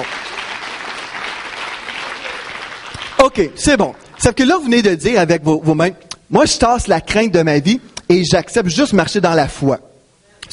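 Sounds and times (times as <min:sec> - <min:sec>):
church congregation applauding: 0:00.0 - 0:04.4
speech: 0:03.3 - 0:09.9.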